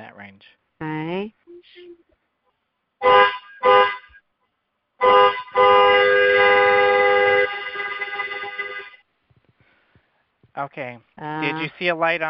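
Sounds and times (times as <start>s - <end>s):
speech: 0.3s - 1.4s, 10.7s - 12.2s
car horn honking: 3.0s - 4.2s, 5.0s - 9.0s.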